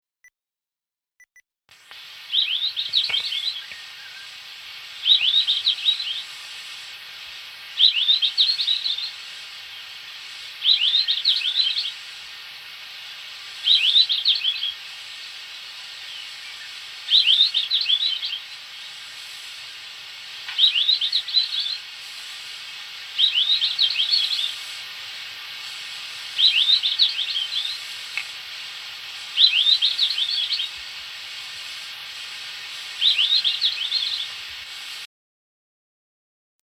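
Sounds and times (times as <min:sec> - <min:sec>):
golden bush robin calling: 0:02.3 - 0:06.7, 0:07.8 - 0:12.0, 0:13.6 - 0:14.8, 0:16.0 - 0:19.8, 0:20.5 - 0:21.9, 0:23.0 - 0:24.8, 0:25.4 - 0:28.2, 0:29.2 - 0:30.8, 0:32.6 - 0:34.4.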